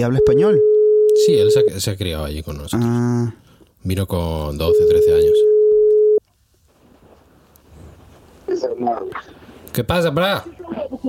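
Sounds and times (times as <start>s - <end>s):
speech: 0.0s - 5.5s, 8.6s - 11.0s
telephone call ringing tone: 0.2s - 1.6s, 4.7s - 6.2s.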